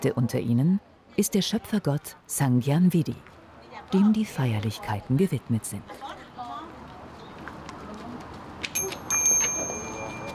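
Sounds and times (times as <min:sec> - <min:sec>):
speech: 0:00.0 - 0:06.2
small ritual handbell rung by a priest: 0:08.8 - 0:10.3.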